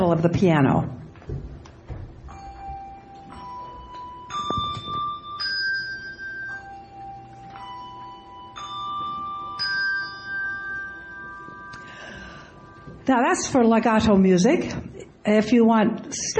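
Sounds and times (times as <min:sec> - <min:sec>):
speech: 0:00.1 - 0:01.4, 0:13.1 - 0:16.3
handbells ringing and being damped: 0:02.2 - 0:13.7.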